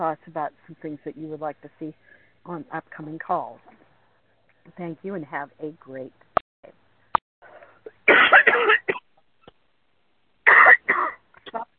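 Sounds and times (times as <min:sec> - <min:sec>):
speech: 0:00.0 - 0:03.8, 0:04.7 - 0:06.8
person in a coughing fit from throat tickle: 0:07.9 - 0:09.0, 0:10.5 - 0:11.6.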